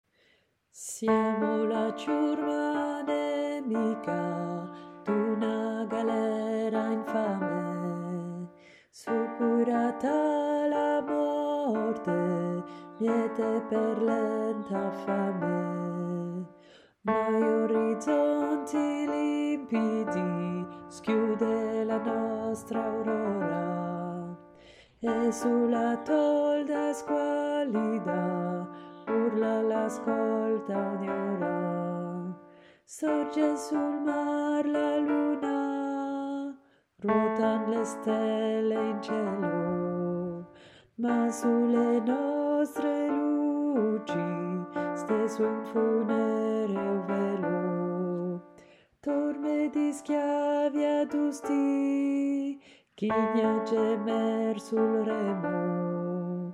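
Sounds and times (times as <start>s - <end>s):
alto voice singing a chorale: 0.8s - 56.5s.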